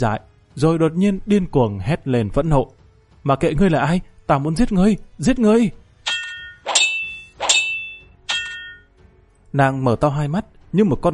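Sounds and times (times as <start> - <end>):
speech: 0.0 - 5.8, 9.5 - 11.1
sabers clashing in a sword fight: 6.1 - 8.8.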